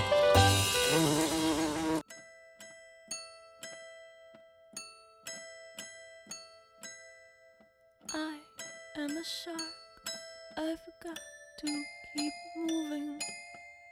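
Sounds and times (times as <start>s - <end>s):
wasp buzzing: 0.0s - 2.0s
speech: 9.2s - 9.8s, 10.6s - 13.4s.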